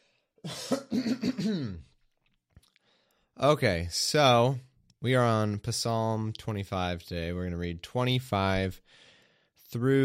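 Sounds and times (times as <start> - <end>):
person coughing harsh rasping coughs: 0.4 - 1.9
speech: 0.4 - 1.9, 3.4 - 9.0, 9.7 - 10.0.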